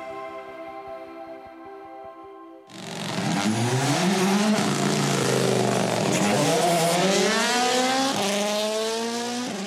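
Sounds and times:
rally car engine revving through gear shifts: 2.7s - 9.6s.

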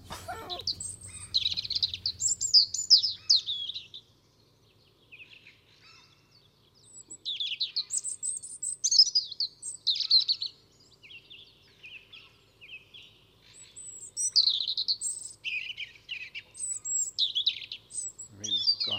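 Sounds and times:
common gull: 0.0s - 2.5s
fieldfare: 0.0s - 2.8s
European robin singing: 0.0s - 18.9s
faint low hum: 0.0s - 18.9s.

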